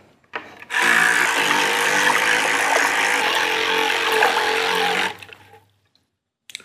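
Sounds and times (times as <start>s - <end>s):
electric toothbrush running submerged in a bucket of water: 0.7s - 5.4s.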